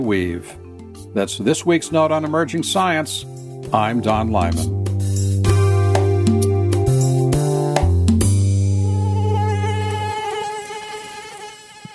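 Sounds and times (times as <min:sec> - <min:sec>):
speech: 0:00.0 - 0:00.6, 0:01.2 - 0:04.8
mosquito buzzing: 0:05.5 - 0:11.9.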